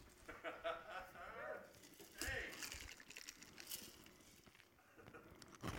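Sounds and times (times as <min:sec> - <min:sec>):
laughter: 0:00.2 - 0:01.6
chewing crunchy ice: 0:01.7 - 0:05.7.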